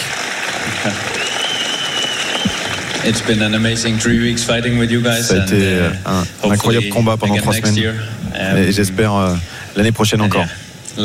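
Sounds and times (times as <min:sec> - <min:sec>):
crowd applauding: 0:00.0 - 0:04.6
speech: 0:00.8 - 0:01.1, 0:03.0 - 0:11.0
whistle-like tone: 0:01.2 - 0:02.7.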